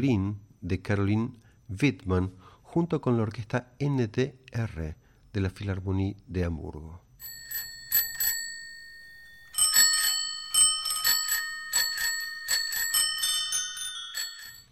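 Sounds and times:
speech: 0.0s - 7.4s
bicycle bells ringing: 7.2s - 14.7s.

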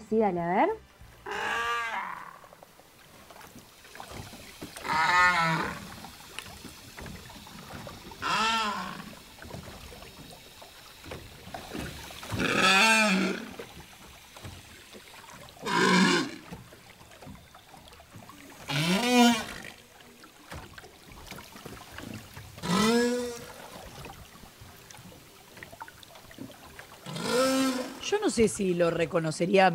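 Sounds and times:
speech: 0.1s - 1.4s, 28.3s - 29.7s
whale song: 1.2s - 2.7s, 4.4s - 6.7s, 7.4s - 9.4s, 12.2s - 13.9s, 15.5s - 20.5s, 22.6s - 24.1s, 27.0s - 28.1s.

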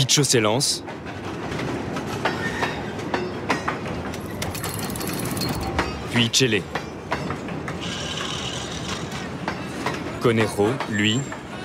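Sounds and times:
train pulling away, rumbling: 0.0s - 11.6s
speech: 0.1s - 1.3s, 6.2s - 6.8s, 10.2s - 11.6s.

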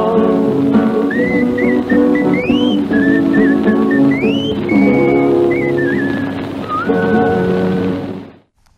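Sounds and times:
full instrumental backing: 0.0s - 8.4s
person whistling a melody: 1.0s - 7.6s.

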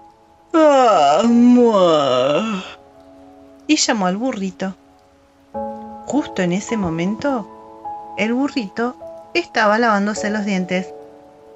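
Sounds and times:
voice imitating a cow yawning: 0.6s - 2.8s
speech: 3.7s - 4.8s, 6.1s - 7.6s, 8.2s - 11.0s.

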